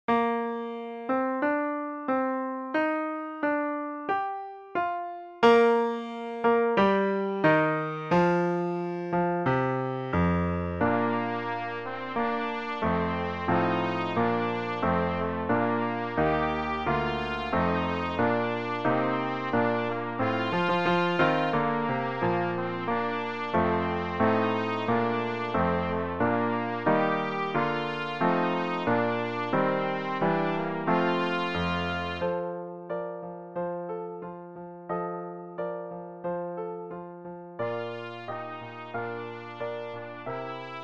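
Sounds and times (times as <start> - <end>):
piano: 0.0 - 40.8
trumpet playing a hymn: 10.8 - 32.6, 37.6 - 40.8.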